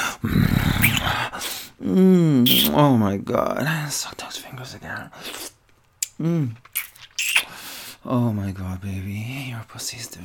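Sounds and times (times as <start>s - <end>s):
human voice imitating a dog growl: 0.2s - 1.2s
speech: 1.9s - 5.5s, 6.2s - 10.2s.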